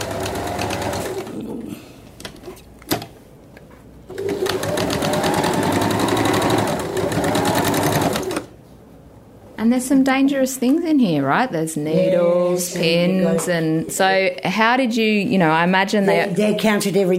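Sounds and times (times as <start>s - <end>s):
sewing machine stitching fabric into a circle: 0.0s - 1.4s, 4.1s - 8.5s
speech: 9.7s - 17.1s.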